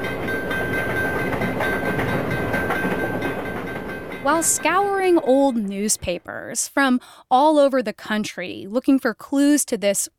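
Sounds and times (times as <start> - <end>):
thin metallic whine of train wheels: 0.0 - 6.1
train rolling on rails: 0.0 - 6.3
speech: 4.2 - 10.1.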